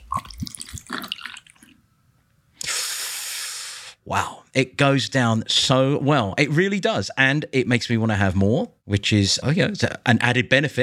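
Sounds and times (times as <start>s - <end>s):
whiskey pouring over ice cubes: 0.2s - 1.7s
speech: 4.1s - 10.8s.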